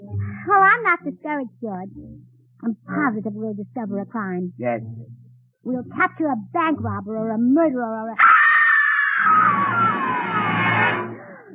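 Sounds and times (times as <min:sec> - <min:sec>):
speech: 0:00.4 - 0:08.4
woman's high-pitched scream sliding downward in pitch: 0:08.2 - 0:11.4.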